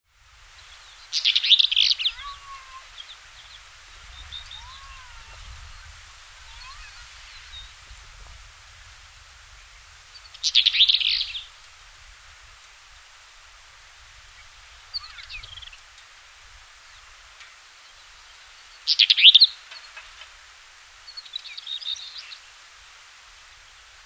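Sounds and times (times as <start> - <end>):
black eared wheatear call: 1.1 - 7.7, 10.4 - 11.5, 14.9 - 15.8.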